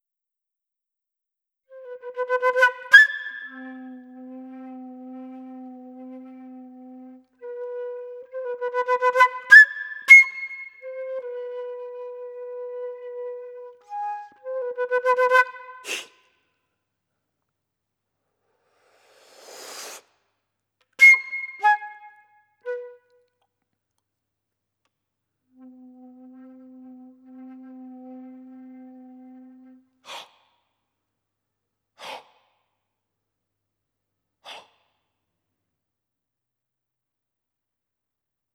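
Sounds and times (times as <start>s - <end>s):
flute: 1.7s - 16.3s, 21.0s - 23.4s, 25.5s - 30.2s.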